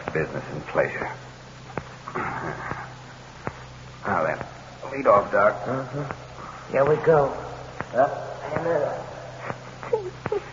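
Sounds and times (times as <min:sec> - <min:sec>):
speech: 0:00.1 - 0:01.3, 0:05.0 - 0:09.0
short high whiny whimpering: 0:09.4 - 0:10.5.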